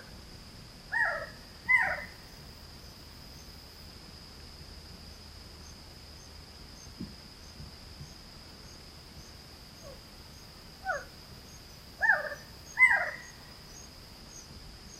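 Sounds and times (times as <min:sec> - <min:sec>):
unknown bird calling: 0:00.9 - 0:02.2, 0:12.0 - 0:13.4.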